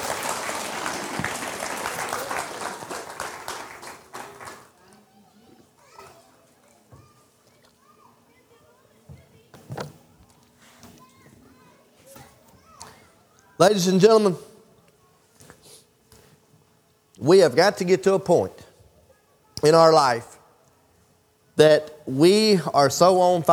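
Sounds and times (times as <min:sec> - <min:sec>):
crowd applauding: 0:00.0 - 0:04.8
speech: 0:13.6 - 0:14.5, 0:17.3 - 0:18.6, 0:19.6 - 0:20.3, 0:21.6 - 0:23.5.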